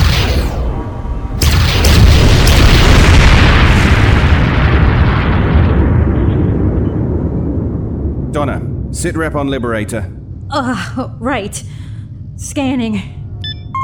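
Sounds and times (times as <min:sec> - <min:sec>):
loud sustained roaring rumble of sci-fi railguns: 0:00.6 - 0:13.3
sci-fi railguns firing in a space battle: 0:01.4 - 0:05.2
speech: 0:09.0 - 0:13.2.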